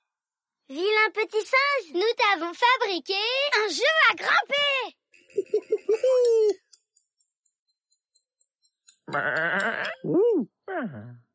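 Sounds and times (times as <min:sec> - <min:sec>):
speech: 0:00.7 - 0:06.6, 0:09.1 - 0:11.2
soft evenly spaced ticks: 0:06.2 - 0:10.0
sheep bleating: 0:09.1 - 0:09.9.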